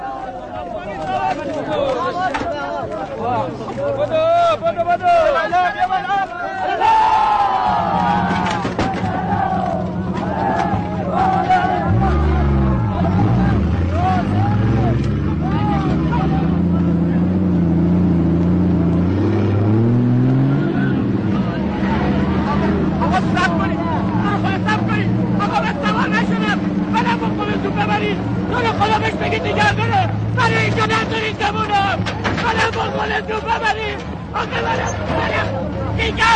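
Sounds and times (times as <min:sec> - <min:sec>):
crowd of soldiers' voices calling and chattering: 0:00.0 - 0:36.3
heavy military truck engines rumbling and revving: 0:00.0 - 0:36.3.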